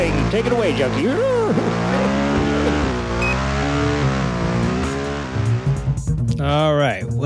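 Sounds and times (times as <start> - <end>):
yellow sport motorcycle used for reporting traffic revving and pulling away: 0.0 - 6.2
speech: 0.3 - 2.0, 6.4 - 7.2.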